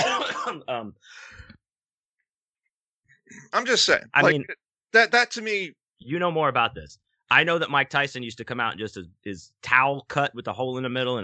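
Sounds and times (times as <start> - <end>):
person clearing throat: 0.0 - 0.8
person coughing: 0.0 - 0.8
speech: 0.5 - 1.5, 3.3 - 11.2.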